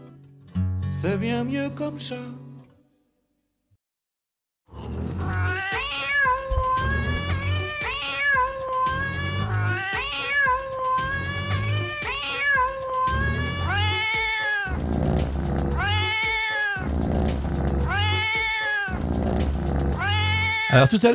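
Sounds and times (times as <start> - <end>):
speech: 0.9 - 2.4, 20.7 - 21.1
real cat meows edited into a melodic song-like sequence: 4.8 - 14.9, 15.5 - 17.0, 17.8 - 20.9
steady musical backing: 5.0 - 21.1.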